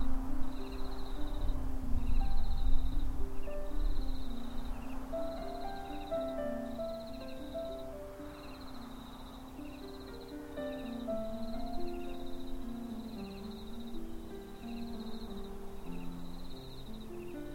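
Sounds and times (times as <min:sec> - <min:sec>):
crickets chirping: 0:00.0 - 0:17.5
soft wind in the grass: 0:00.0 - 0:17.5.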